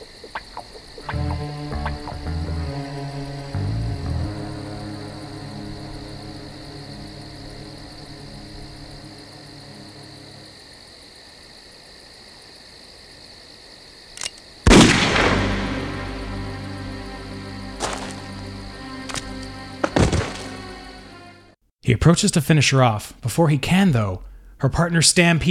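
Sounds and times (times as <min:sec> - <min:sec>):
low droning ambient tones: 0:01.0 - 0:10.6, 0:15.2 - 0:21.6
brief click: 0:14.2 - 0:14.4
gunshot from a video game cutscene: 0:14.7 - 0:15.9
speech: 0:22.0 - 0:25.4.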